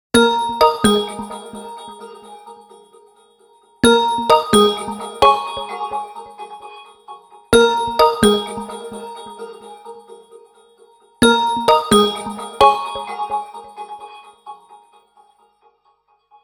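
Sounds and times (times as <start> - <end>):
mobile phone ringtone: 0.2 - 2.5, 3.8 - 7.0, 7.6 - 9.7, 11.2 - 14.4.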